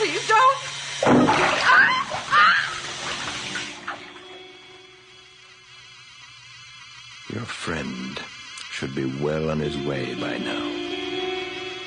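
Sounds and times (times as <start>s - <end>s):
water sloshing and splashing in a bathtub: 0.0s - 4.2s
speech: 7.4s - 10.7s.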